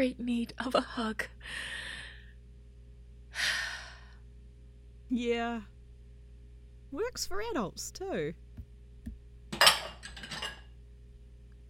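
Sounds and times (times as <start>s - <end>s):
speech: 0.0s - 1.8s, 5.1s - 5.7s, 6.9s - 8.4s
dishes and cutlery clinking during washing up: 9.5s - 10.7s.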